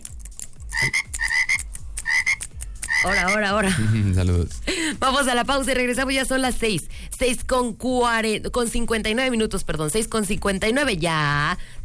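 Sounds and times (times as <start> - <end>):
frog croaking: 0.7 - 3.5
speech: 3.0 - 11.8.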